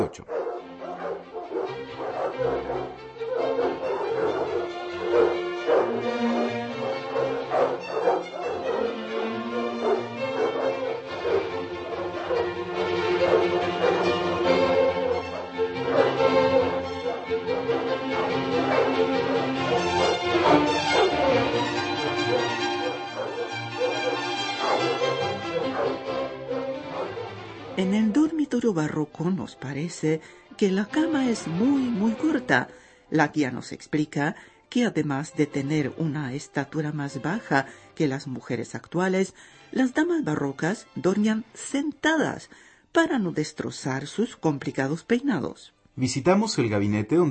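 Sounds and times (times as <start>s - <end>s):
speech: 0.1s - 0.4s, 1.2s - 3.7s, 27.8s - 47.2s
large pack of dogs barking, yelping and whining: 0.2s - 27.8s.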